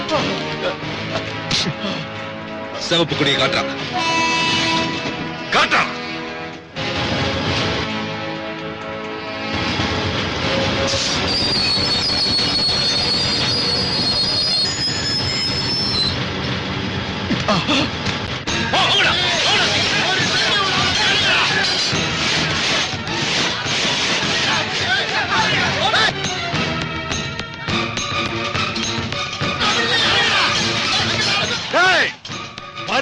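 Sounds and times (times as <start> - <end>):
speech: 0.1 - 4.3, 5.5 - 6.0, 10.9 - 12.0, 17.5 - 18.0
train cars rumbling and clanking: 6.3 - 32.9
train wheels squealing against the rails while braking: 10.9 - 16.3.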